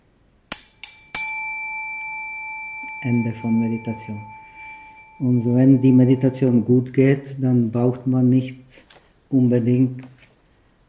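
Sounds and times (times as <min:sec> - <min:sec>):
meditation bell struck during a meditation session: 0:00.5 - 0:07.4
speech: 0:03.0 - 0:04.4, 0:05.2 - 0:10.2.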